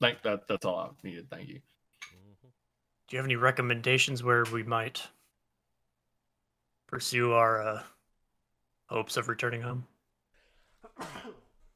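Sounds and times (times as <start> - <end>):
speech: 0.0 - 5.2, 6.9 - 7.9, 8.9 - 9.9, 11.0 - 11.4
person sneezing: 10.9 - 11.5.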